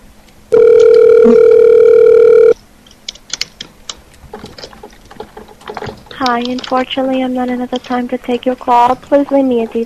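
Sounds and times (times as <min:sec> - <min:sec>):
phone line ringback tone: 0:00.5 - 0:02.6
speech: 0:01.2 - 0:01.5, 0:06.2 - 0:09.8
handling noises: 0:02.6 - 0:09.8.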